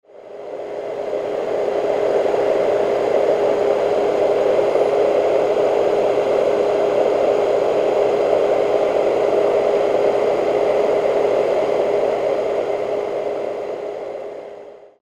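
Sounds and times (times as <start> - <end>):
vintage sleep machine noise: 0.1 - 15.0.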